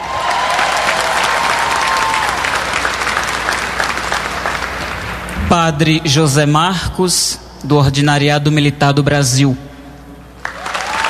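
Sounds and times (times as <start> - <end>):
large audience applauding: 0.0 - 5.3, 10.4 - 11.0
speech: 5.5 - 9.7.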